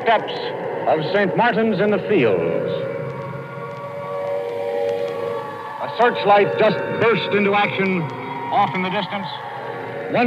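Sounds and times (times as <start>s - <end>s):
air raid sirens wailing: 0.0s - 10.2s
speech: 0.1s - 2.9s, 6.0s - 9.5s.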